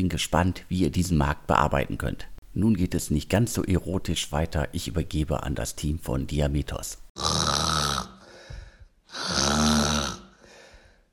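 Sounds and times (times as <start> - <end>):
speech: 0.0 - 7.4
person snoring with loud rasping snores: 7.2 - 11.0
quiet breathing: 8.2 - 9.1, 10.3 - 11.1.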